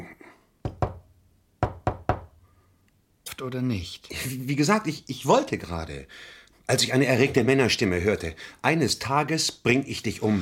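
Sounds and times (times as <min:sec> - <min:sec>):
agreed knocking signal of sharp knocks: 0:00.6 - 0:02.4
speech: 0:03.4 - 0:10.4.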